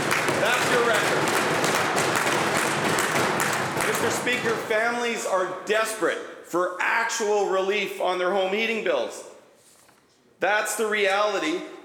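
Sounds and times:
legislators clapping in applause: 0:00.0 - 0:04.8
speech: 0:04.2 - 0:09.3, 0:10.4 - 0:11.8.

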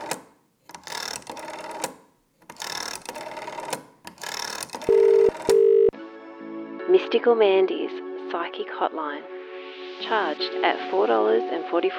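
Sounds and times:
telephone dial whirring and clicking: 0:00.0 - 0:05.9
speech: 0:06.9 - 0:09.3, 0:10.0 - 0:11.9.

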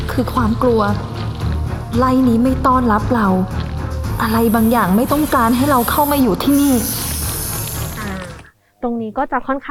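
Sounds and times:
speech: 0:00.2 - 0:01.2, 0:01.9 - 0:03.6, 0:04.2 - 0:07.0, 0:08.8 - 0:09.6
designed sound effect of a slimy snake slithering: 0:03.5 - 0:08.5.

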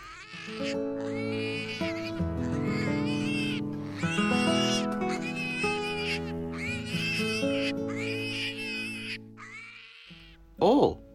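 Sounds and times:
pigs squealing and grunting: 0:00.0 - 0:10.4
speech: 0:00.5 - 0:01.2.

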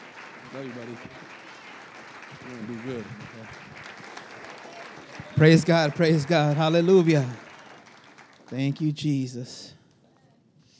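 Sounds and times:
crowd clapping: 0:00.0 - 0:10.3
speech: 0:00.5 - 0:01.4, 0:02.3 - 0:04.0, 0:05.3 - 0:07.4, 0:08.5 - 0:09.8.

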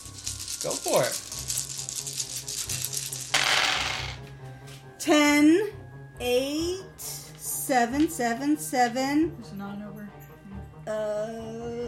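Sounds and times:
many dice rolled for weapon damage in a game, tumbling across a hard surface: 0:00.0 - 0:04.2
speech: 0:00.6 - 0:01.3, 0:05.0 - 0:06.8, 0:07.7 - 0:10.0, 0:10.9 - 0:11.8.

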